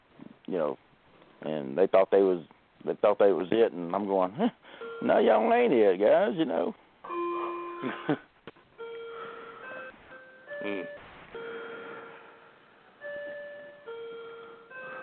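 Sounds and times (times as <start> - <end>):
speech: 0.5 - 6.8, 7.8 - 8.3, 10.6 - 11.0
clock chiming a tinkling melody striking the hour: 4.8 - 5.7, 7.1 - 8.2, 8.8 - 15.0.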